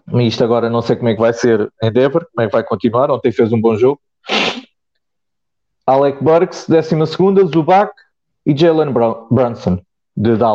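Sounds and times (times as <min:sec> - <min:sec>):
speech: 0:00.1 - 0:04.6, 0:05.9 - 0:10.5
person sneezing: 0:04.2 - 0:04.7.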